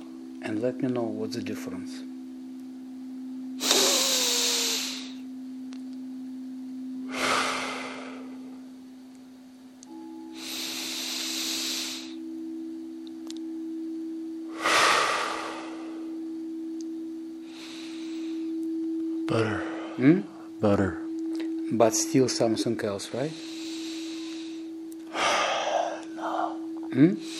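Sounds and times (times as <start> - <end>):
faint steady hum: 0.0 - 27.3
speech: 0.4 - 2.1, 21.9 - 23.5, 27.0 - 27.3
slow deep breaths drawn to full lung capacity: 7.1 - 8.6, 10.4 - 12.2, 14.5 - 16.2, 17.4 - 18.8, 23.3 - 27.3.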